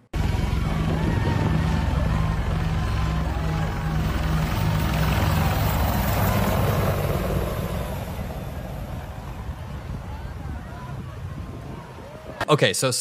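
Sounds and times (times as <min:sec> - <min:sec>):
military Apache helicopters rotor thrum and engine roar flying low over crowd: 0:00.2 - 0:10.1
faint crowd murmur: 0:00.2 - 0:12.4.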